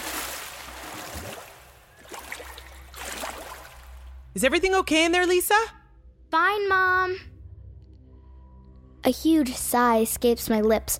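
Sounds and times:
water sloshing and splashing in a full bathtub: 0.0s - 4.2s
speech: 4.4s - 7.3s, 9.0s - 10.9s.

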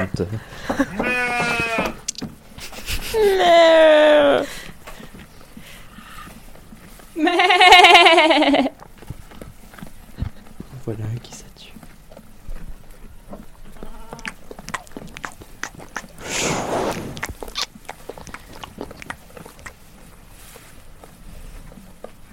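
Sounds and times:
speech: 0.0s - 1.3s, 3.1s - 4.5s, 10.9s - 11.4s
sheep and lambs bleating: 0.9s - 2.0s
laughter: 2.6s - 4.4s, 7.2s - 8.7s.

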